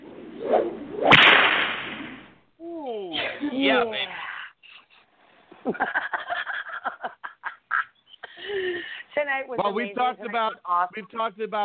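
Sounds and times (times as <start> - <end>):
whip swishing and cracking: 0.4 - 2.3
speech: 3.5 - 4.2, 5.7 - 6.2, 9.2 - 11.6
laughter: 4.6 - 9.0.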